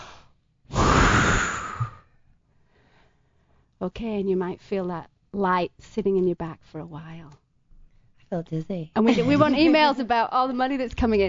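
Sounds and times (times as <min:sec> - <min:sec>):
deep breath taken during a guided healing session: 0:00.0 - 0:03.7
speech: 0:03.8 - 0:07.4, 0:08.3 - 0:11.2.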